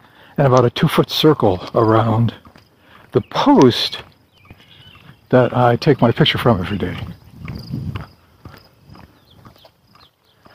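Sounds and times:
speech: 0.4 - 2.4, 3.1 - 4.1, 5.3 - 7.8
footsteps along a narrow beaten footpath through long grass: 1.5 - 10.5.

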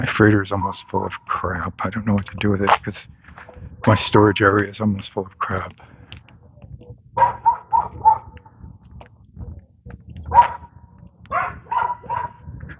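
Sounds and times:
speech: 0.0 - 6.0, 7.2 - 7.4
low rumble: 0.0 - 12.7
dog barking: 0.6 - 0.9, 7.2 - 8.4, 10.2 - 12.7.

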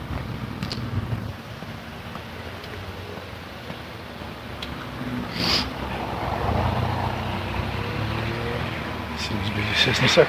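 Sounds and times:
steady outdoor noise: 0.0 - 10.2
car driving past on street: 4.8 - 10.2.

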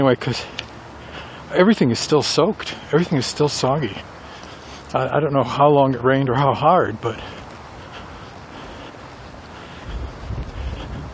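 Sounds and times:
speech: 0.0 - 0.6, 1.5 - 4.2, 4.9 - 7.4
wind blowing outdoors on a damp day after rain: 0.7 - 11.1.

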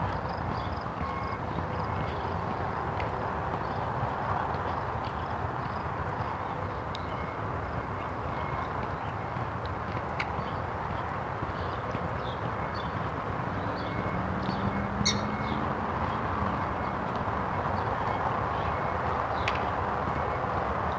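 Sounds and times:
steady outdoor wind: 0.0 - 20.9
prairie dog chirping: 15.0 - 15.6.

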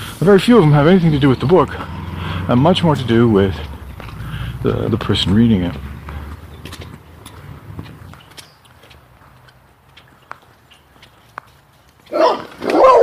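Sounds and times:
speech: 0.2 - 3.7, 4.6 - 5.9
big dog and smaller dog barking: 12.1 - 13.0.

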